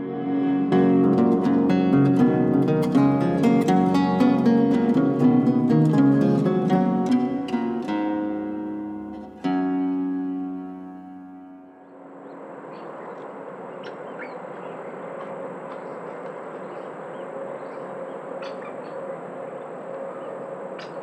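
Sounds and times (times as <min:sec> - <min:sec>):
sustained tone: 0:00.0 - 0:15.0
dense steady outdoor hum: 0:00.0 - 0:21.0
Groove-billed ani calls: 0:11.8 - 0:21.0.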